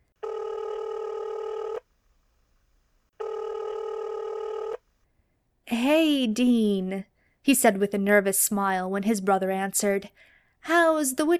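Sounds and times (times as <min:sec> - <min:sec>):
electronic phone ringback tones: 0:00.2 - 0:01.9, 0:03.2 - 0:04.8
speech: 0:05.7 - 0:11.3.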